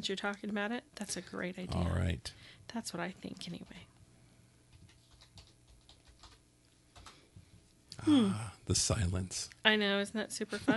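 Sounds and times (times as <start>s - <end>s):
speech: 0.0s - 3.9s, 8.0s - 10.7s
typing on a computer keyboard: 4.7s - 7.2s.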